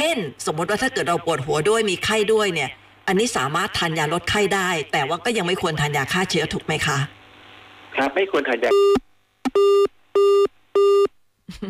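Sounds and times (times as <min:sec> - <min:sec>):
speech: 0:00.1 - 0:07.2, 0:07.9 - 0:09.9, 0:11.5 - 0:11.6
telephone busy signal after call connection drops: 0:08.7 - 0:11.1.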